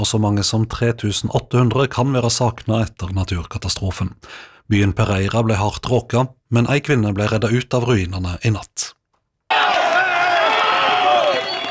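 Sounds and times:
speech: 0:00.0 - 0:09.0
crowd cheering and crying at earthquake rescue: 0:09.5 - 0:11.6.

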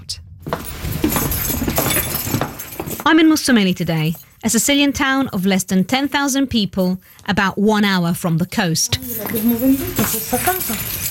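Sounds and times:
estate agent's keys jangling in Mussomeli Sicily: 0:00.7 - 0:03.2, 0:08.9 - 0:11.1
speech: 0:03.1 - 0:11.0.

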